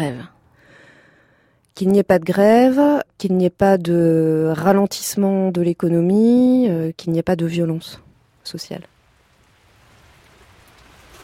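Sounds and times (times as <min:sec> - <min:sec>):
speech: 0:00.0 - 0:00.4, 0:01.8 - 0:08.9
steady rain falling: 0:08.1 - 0:11.2.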